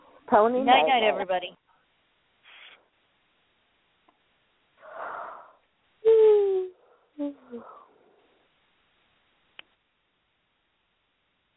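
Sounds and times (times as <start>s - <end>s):
speech: 0.3s - 1.6s
trailing sigh: 4.8s - 7.9s
person yawning: 5.0s - 7.9s.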